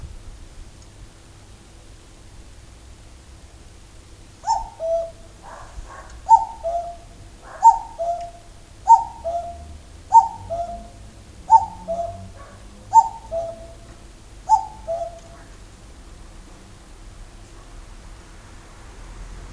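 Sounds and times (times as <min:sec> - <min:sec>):
cuckoo calling from a TV antenna on a house roof: 0:04.4 - 0:15.6.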